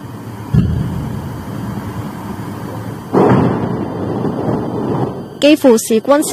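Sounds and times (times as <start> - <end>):
constant rumbling background: 0.5 - 4.6
explosion booms from missile and drone strikes on Kyiv: 0.6 - 3.8
speech: 5.4 - 6.3.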